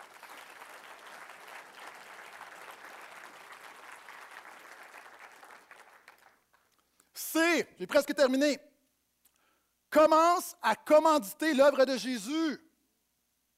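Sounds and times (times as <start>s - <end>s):
congregation applauding: 0.0s - 6.8s
speech: 7.4s - 8.7s, 10.0s - 12.6s.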